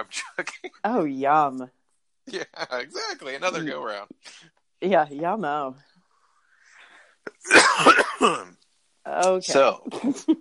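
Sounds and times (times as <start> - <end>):
speech: 0.0 - 5.9, 7.4 - 10.3
person coughing: 7.3 - 8.5.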